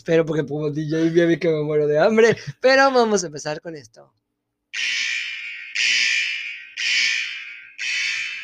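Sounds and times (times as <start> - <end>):
speech: 0.0 - 5.1
loud harsh alarm blaring as spoiler warning: 4.7 - 8.4.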